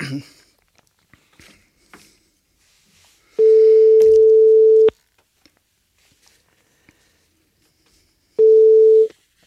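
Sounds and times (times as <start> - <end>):
telephone busy signal during a live radio broadcast: 3.4 - 4.9, 8.4 - 9.1.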